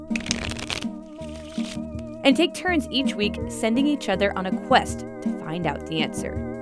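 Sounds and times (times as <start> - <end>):
deck of cards riffled and shuffled: 0.0 - 2.0
speech: 1.8 - 6.5.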